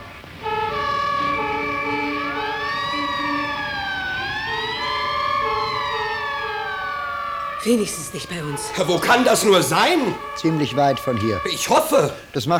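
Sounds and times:
fire-brigade sirens wailing: 0.0s - 12.5s
laughter: 7.6s - 12.5s
speech: 7.6s - 12.5s.

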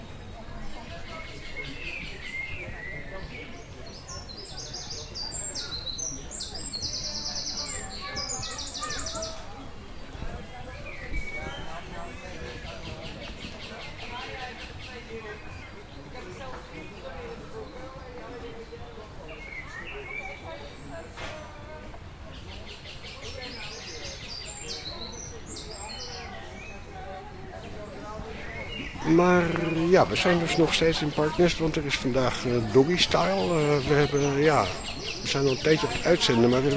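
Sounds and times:
birds singing in a park: 0.0s - 36.7s
speech: 29.1s - 36.7s.

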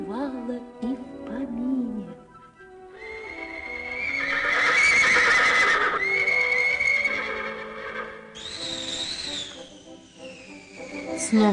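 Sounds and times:
speech: 0.1s - 0.9s, 11.3s - 11.5s
two black horses with golden manes neighing: 3.0s - 9.6s.

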